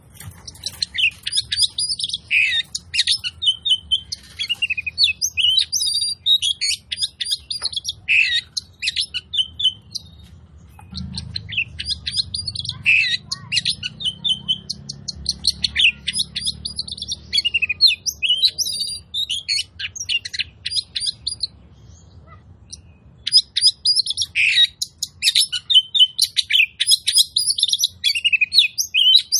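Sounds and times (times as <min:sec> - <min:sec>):
Oriental magpie-robin chirping song used as a lure: 0:00.1 - 0:29.3.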